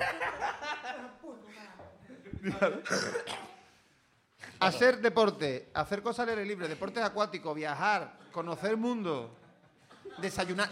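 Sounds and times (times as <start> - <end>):
laughter: 0.0 - 1.4, 8.0 - 10.7
person coughing: 2.3 - 3.7
speech: 2.4 - 3.4, 4.6 - 9.4, 10.1 - 10.7.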